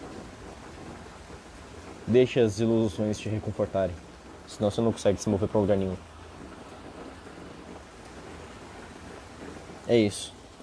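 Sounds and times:
dense rain pouring during a thunderstorm: 0.0s - 10.6s
low rumbling undertone of thunder: 0.0s - 10.6s
speech: 2.1s - 6.1s, 9.9s - 10.4s.

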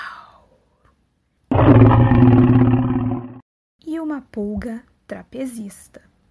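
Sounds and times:
giant dinosaur roar sound effect: 1.5s - 3.4s
speech: 4.3s - 6.1s.

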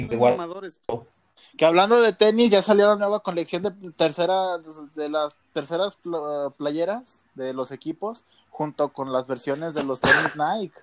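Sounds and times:
speech: 0.0s - 10.8s
sharp loud sneeze: 9.8s - 10.4s.

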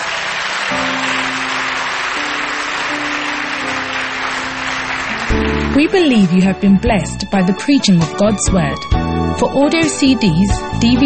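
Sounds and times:
large audience clapping: 0.0s - 7.2s
sustained low keyboard or organ notes: 0.7s - 11.0s
speech: 5.8s - 11.0s.

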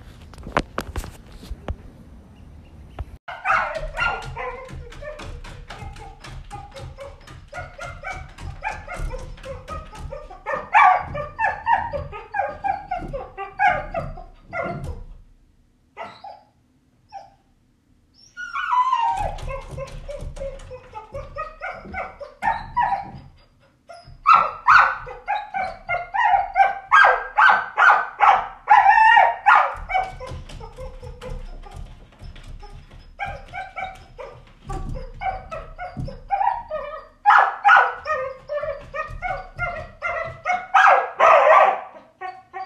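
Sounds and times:
dogs barking: 3.3s - 15.0s, 19.0s - 23.2s, 24.2s - 42.6s.

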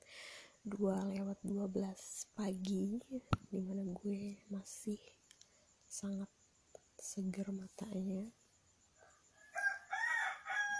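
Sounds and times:
speech: 0.6s - 5.2s, 5.9s - 6.4s, 7.0s - 8.4s
rooster crowing: 9.0s - 10.7s.

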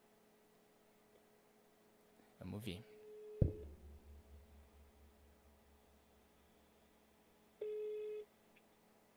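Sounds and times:
faint steady hum: 0.0s - 9.1s
speech: 2.4s - 3.0s
long phone ring tone: 7.6s - 8.3s.

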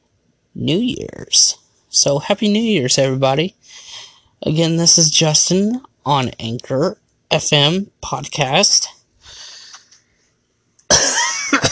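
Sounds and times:
speech: 0.6s - 9.0s
soft breathy exhale: 9.2s - 9.9s
loud harsh raspy cough: 10.9s - 11.7s.

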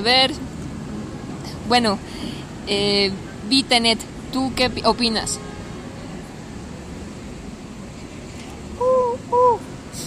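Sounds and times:
speech: 0.0s - 0.5s, 1.7s - 5.5s
person imitating owl hoots: 8.8s - 9.7s.

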